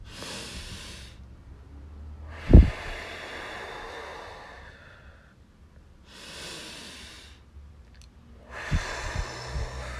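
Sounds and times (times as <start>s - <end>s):
deep breathing in through the nose and out through the mouth: 0.0s - 1.3s, 2.2s - 5.4s, 6.0s - 7.5s, 8.4s - 9.9s.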